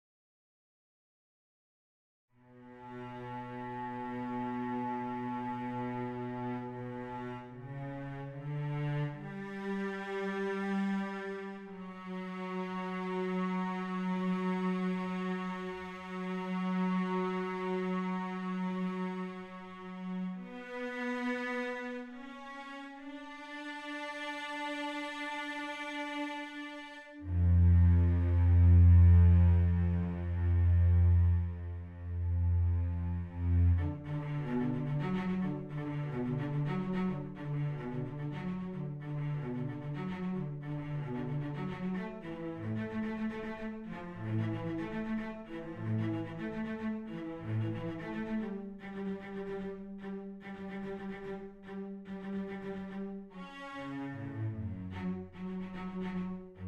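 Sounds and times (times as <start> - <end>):
cellos: 2.3 - 56.6.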